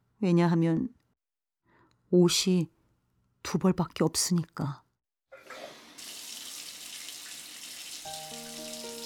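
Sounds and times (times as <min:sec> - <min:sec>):
speech: 0:00.2 - 0:01.0, 0:02.1 - 0:02.8, 0:03.4 - 0:04.8
shower water running while hand-washing clothes: 0:05.4 - 0:09.0.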